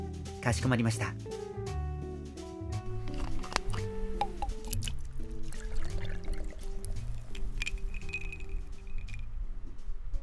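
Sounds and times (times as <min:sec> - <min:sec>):
soft music with steady sustained tones: 0:00.0 - 0:10.2
speech: 0:00.4 - 0:01.4
water poured into a glass of 30-degree awamori: 0:03.0 - 0:09.2
light glass clinks: 0:07.3 - 0:09.3.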